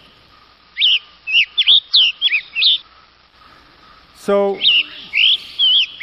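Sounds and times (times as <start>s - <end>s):
western tanager calling in slurred whistled phrases: 0.7s - 2.9s, 4.5s - 6.0s
speech: 4.2s - 4.7s.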